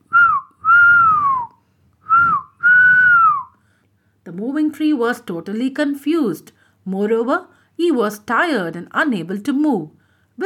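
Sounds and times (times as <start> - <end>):
person whistling: 0.1 - 3.6
speech: 4.3 - 10.4.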